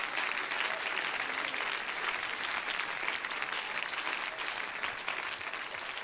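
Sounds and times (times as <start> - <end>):
large audience clapping: 0.0 - 6.0.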